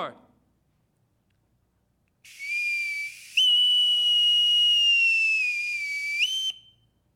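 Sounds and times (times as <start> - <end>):
speech: 0.0 - 0.2
bosun's whistle piping on a ship: 2.3 - 6.9.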